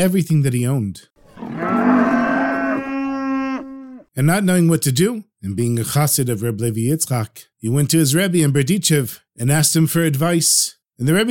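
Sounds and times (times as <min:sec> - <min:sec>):
speech: 0:00.0 - 0:02.0, 0:04.2 - 0:11.2
cow mooing: 0:01.3 - 0:04.1.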